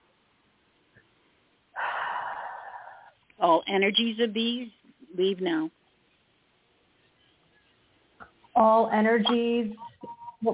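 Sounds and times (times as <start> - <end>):
deep breath in: 1.8 - 3.2
speech: 3.4 - 5.8, 8.6 - 10.5.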